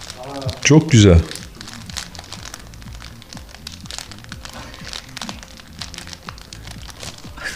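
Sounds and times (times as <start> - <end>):
plastic bag crinkling as foley for a fireplace fire: 0.0 - 7.5
faint low murmuring: 0.1 - 1.3
speech: 0.3 - 1.4.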